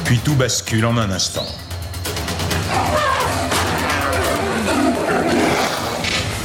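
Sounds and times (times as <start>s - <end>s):
speech: 0.1s - 1.6s
tiger roaring and snarling as it attacks: 2.7s - 6.3s.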